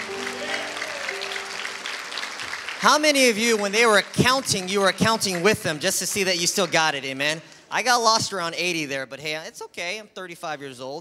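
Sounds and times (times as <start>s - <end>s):
audience applause: 0.0s - 6.9s
speech: 2.8s - 10.9s.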